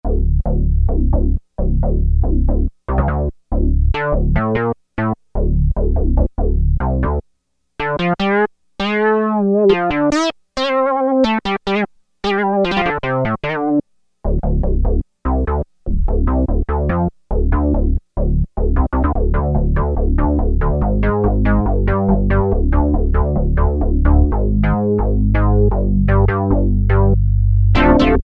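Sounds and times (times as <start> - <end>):
funk bass on Roland Juno-60 synthesizer factory preset: 0.0 - 7.2, 7.8 - 28.2.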